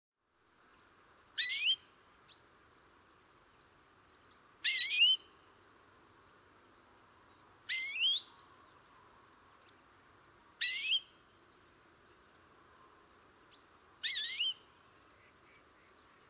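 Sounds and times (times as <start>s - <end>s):
quiet hiss: 0.2s - 16.2s
European greenfinch Chloris chloris wheezy calls: 1.4s - 1.8s, 7.7s - 8.5s, 14.0s - 16.2s.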